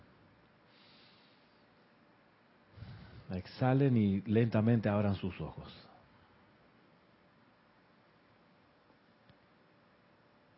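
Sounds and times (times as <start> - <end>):
person breathing in slowly through nose and mouth: 2.7 - 3.3
speech: 3.3 - 5.9.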